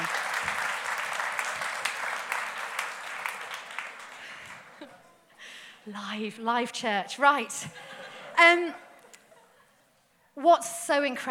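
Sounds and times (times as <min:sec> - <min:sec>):
church audience applause: 0:00.0 - 0:04.9
laughter: 0:04.2 - 0:05.4, 0:07.7 - 0:09.9
speech: 0:05.9 - 0:08.8, 0:10.4 - 0:11.2.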